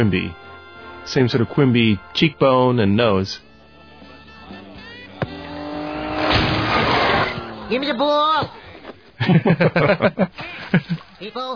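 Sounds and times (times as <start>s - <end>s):
speech: 0.0s - 0.4s, 1.0s - 3.5s, 7.7s - 8.6s, 9.2s - 11.5s
moving car engine humming and speeding up: 4.6s - 8.0s
sharp thud: 5.2s - 7.7s
laughter: 8.6s - 11.1s.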